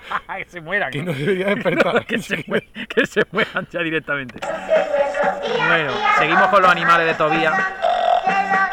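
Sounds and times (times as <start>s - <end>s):
laughter: 0.0s - 4.9s
speech: 0.1s - 8.6s
man burping in place of a pig's grunt: 0.9s - 3.7s.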